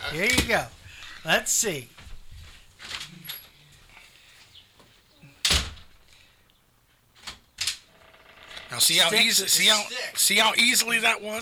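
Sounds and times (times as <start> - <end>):
door bumping and clicking: 0.0 - 0.6, 4.8 - 6.0, 7.2 - 7.9
door slamming shut with a loud thud: 0.1 - 0.7, 5.2 - 6.0
speech: 0.1 - 2.0, 8.7 - 11.4.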